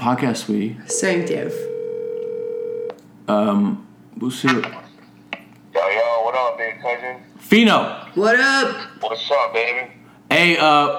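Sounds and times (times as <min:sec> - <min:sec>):
speech: 0:00.0 - 0:01.7, 0:03.3 - 0:04.8, 0:06.6 - 0:10.9
electronic telephone ringing tone of an outgoing call: 0:00.9 - 0:03.0.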